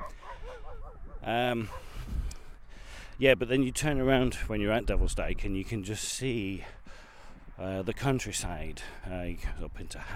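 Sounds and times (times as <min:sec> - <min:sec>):
several dogs barking and yipping while playing: 0:00.0 - 0:02.0
speech: 0:01.2 - 0:01.9, 0:03.2 - 0:06.8, 0:07.6 - 0:10.1.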